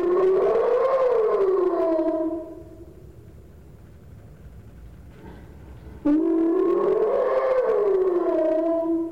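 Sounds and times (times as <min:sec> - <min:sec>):
hyena slow whoop call: 0:00.0 - 0:02.8, 0:06.0 - 0:09.1.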